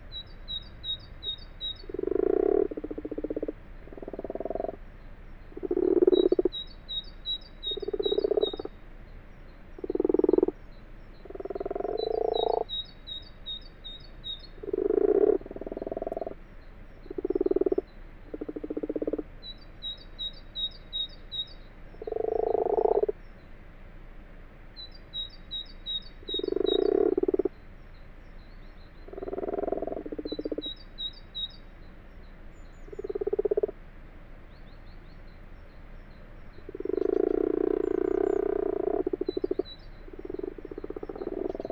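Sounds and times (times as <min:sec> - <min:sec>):
common frogs croaking inside a stone washhouse: 0:00.0 - 0:23.3, 0:25.2 - 0:27.6, 0:28.7 - 0:31.7, 0:32.6 - 0:33.8, 0:35.6 - 0:41.7.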